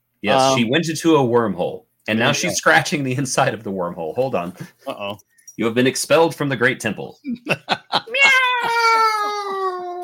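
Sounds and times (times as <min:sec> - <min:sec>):
speech: 0:00.2 - 0:08.1
laughter: 0:04.4 - 0:05.2, 0:07.2 - 0:09.6
cat meowing: 0:08.1 - 0:10.0.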